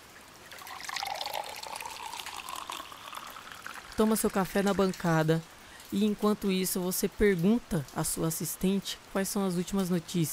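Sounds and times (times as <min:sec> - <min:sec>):
orange juice pouring into a glass: 0:00.5 - 0:05.4
speech: 0:04.0 - 0:10.3.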